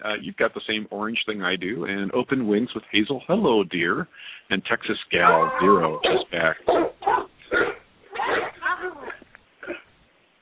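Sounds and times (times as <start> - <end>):
speech: 0.0 - 7.3
dogs barking in short sharp yaps: 5.2 - 9.2.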